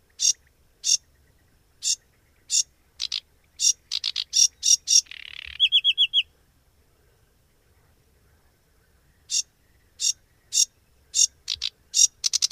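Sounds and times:
sedge warbler song with harsh scratchy chattering: 0.0s - 12.5s.

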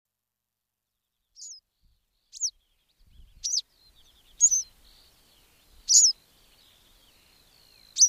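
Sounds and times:
faint twittering from other birds: 1.3s - 8.0s
western yellow wagtail calls: 2.3s - 2.5s, 3.4s - 8.0s.

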